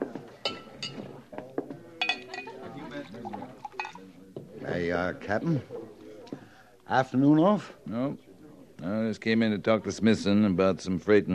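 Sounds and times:
people talking quietly: 0.0s - 11.3s
glasses clinking as a glass of rye is poured and served: 0.4s - 1.2s, 2.0s - 4.1s
speech: 4.8s - 5.8s, 6.9s - 11.3s.

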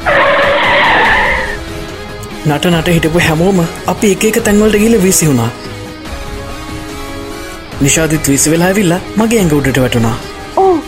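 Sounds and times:
bus braking suddenly with tire screech: 0.0s - 1.6s
speech: 2.4s - 5.7s, 7.8s - 10.8s.

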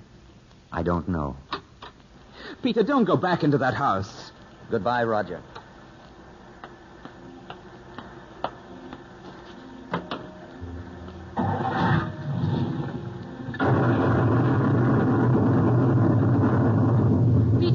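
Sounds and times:
speech: 0.7s - 1.5s, 2.5s - 5.6s
loud rumbling thunder crash: 11.4s - 17.7s
sharp cracks of lightning strike: 11.4s - 17.7s.

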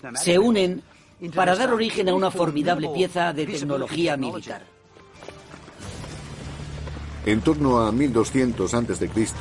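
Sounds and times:
speech: 0.0s - 5.3s, 7.2s - 9.3s
horse hooves clattering: 3.6s - 9.3s.

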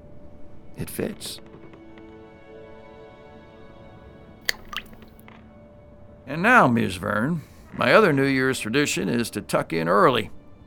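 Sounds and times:
speech: 0.8s - 1.5s, 6.3s - 10.4s
small object splashing into the sea: 4.5s - 5.2s.

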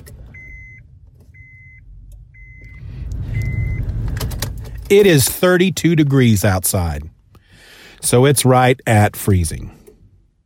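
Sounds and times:
car ignition chime beeping: 0.3s - 3.9s
speech: 4.9s - 7.1s, 8.0s - 9.8s.

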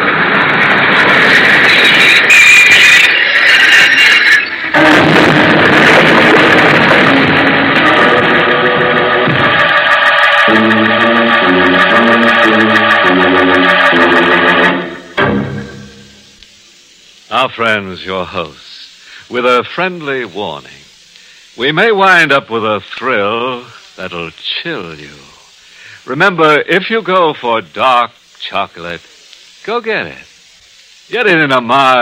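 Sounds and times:
train pulling in with mechanical rumble and hiss: 0.0s - 32.0s
rhythmic clanging: 4.7s - 16.4s
speech: 17.5s - 18.6s, 19.3s - 20.8s, 21.6s - 25.3s, 26.1s - 30.3s, 31.1s - 32.0s.

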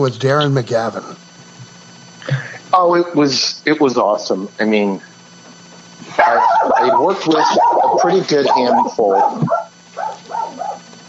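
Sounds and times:
speech: 0.0s - 1.1s, 2.7s - 5.1s, 6.0s - 9.6s
steady low electrical hum: 0.0s - 11.0s
dog on a set barking in short yaps: 6.2s - 10.9s.

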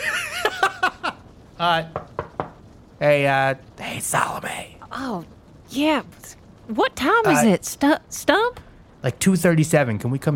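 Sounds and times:
speech: 1.6s - 2.1s, 3.0s - 10.3s
sharp knocks on a door: 1.9s - 2.6s.

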